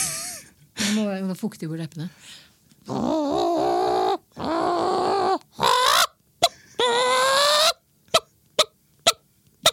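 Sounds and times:
speech: 1.0 - 3.7
person imitating hen clucking: 2.9 - 9.7.

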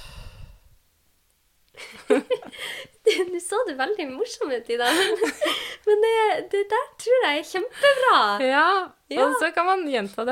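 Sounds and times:
slow breathy exhale during breathing exercise: 0.0 - 0.8
speech: 3.2 - 10.2
laughter: 4.9 - 5.8.

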